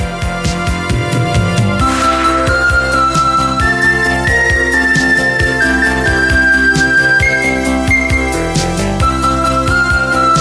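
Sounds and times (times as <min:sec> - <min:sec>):
steady bass: 0:00.0 - 0:09.0
percussion hits: 0:00.3 - 0:05.8
thin whistle-like synth lead in a song: 0:01.0 - 0:10.3.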